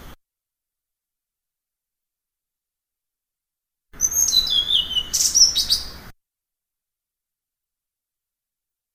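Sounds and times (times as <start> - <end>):
blue-throated flycatcher singing: 4.0 - 6.1.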